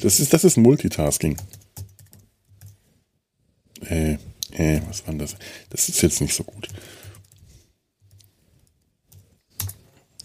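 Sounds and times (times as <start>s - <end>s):
speech: 0.0s - 1.8s, 3.8s - 7.3s
typing a password on a keyboard: 1.2s - 2.9s, 6.3s - 7.5s, 8.1s - 9.9s.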